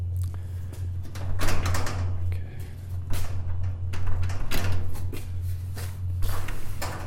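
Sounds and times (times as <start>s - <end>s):
steady low electrical hum: 0.0s - 7.0s
metal overhead door on rails rattling and clanking while being shaken: 1.0s - 2.3s, 3.0s - 5.2s, 6.4s - 7.0s.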